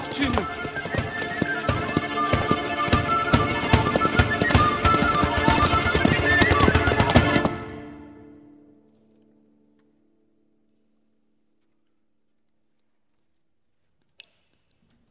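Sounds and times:
galloping horse hooves: 0.0s - 7.8s.

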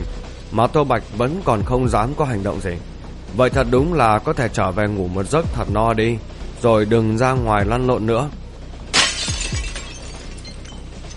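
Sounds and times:
speech: 0.5s - 8.4s
glass fragments settling: 8.9s - 11.1s
glass shattering: 8.9s - 11.1s.

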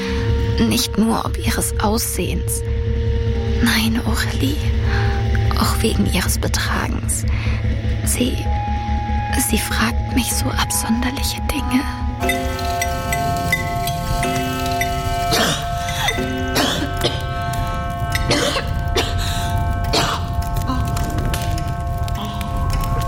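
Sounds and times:
steady low rumble: 0.0s - 23.0s
sustained tonal music: 0.0s - 23.0s
speech: 0.6s - 5.0s, 5.8s - 8.6s, 9.4s - 12.7s
person coughing in a gloomy castle: 15.3s - 17.3s, 18.2s - 21.0s.

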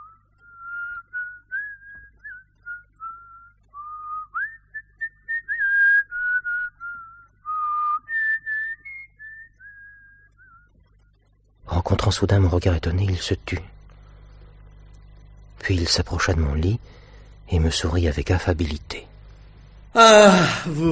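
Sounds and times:
man whistling thoughtfully beside a table in a small villa: 0.0s - 10.7s
faint low hum: 0.0s - 20.9s
speech: 11.8s - 13.8s, 15.7s - 19.1s, 19.9s - 20.9s.

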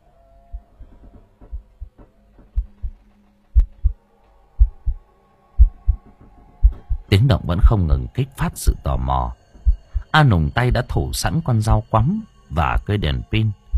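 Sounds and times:
faint hum: 0.0s - 13.7s
heartbeat pounding in the chest: 1.4s - 3.0s, 3.6s - 4.0s, 4.6s - 5.0s, 5.6s - 6.0s, 6.6s - 7.1s, 9.6s - 10.1s
speech: 7.3s - 9.4s, 10.1s - 13.6s.

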